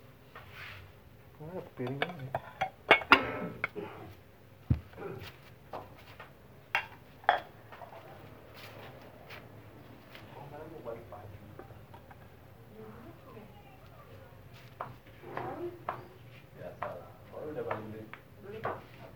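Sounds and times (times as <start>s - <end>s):
low hum: 0.0s - 19.1s
speech: 1.4s - 2.5s
plates clinking and clattering: 1.8s - 3.8s, 6.8s - 8.0s.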